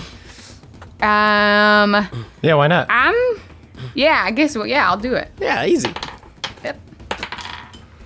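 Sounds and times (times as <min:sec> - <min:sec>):
speech: 0:01.0 - 0:03.2, 0:04.0 - 0:06.0, 0:06.6 - 0:06.8
dice clattering across a hard surface during a tabletop role-playing game: 0:05.8 - 0:07.8.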